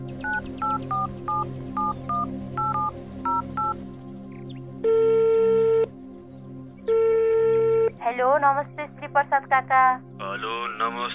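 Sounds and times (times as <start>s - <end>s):
touch tone dialling beeps from a municipal office phone: 0.2s - 3.8s, 4.9s - 5.9s, 6.9s - 7.9s
speech: 8.2s - 11.1s.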